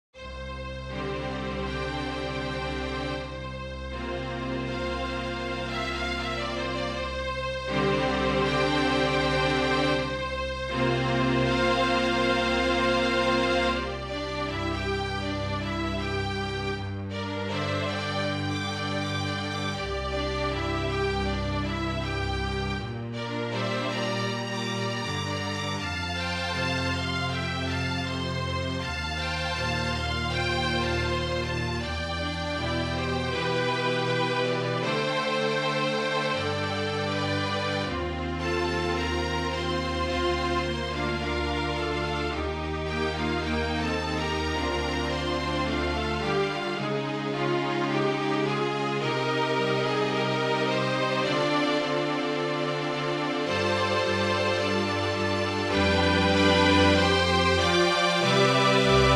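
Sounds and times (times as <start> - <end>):
quartet playing show tune arrangement: 0.2 - 59.1.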